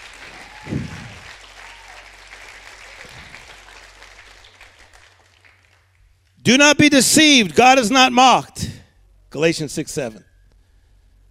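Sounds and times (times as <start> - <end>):
audience clapping hands: 0.0 - 6.3
speech: 6.5 - 8.6, 9.3 - 10.3.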